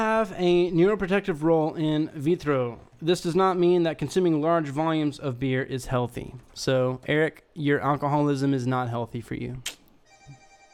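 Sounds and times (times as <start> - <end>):
speech: 0.0 - 9.8
silenced mobile phone ringing with a steady electronic tone: 10.0 - 10.7.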